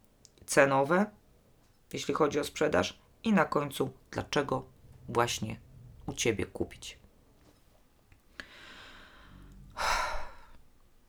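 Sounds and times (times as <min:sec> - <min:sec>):
speech: 0:00.5 - 0:01.2, 0:01.9 - 0:07.0
long drawn-in breath and loud airy exhale like a sigh: 0:08.4 - 0:10.7.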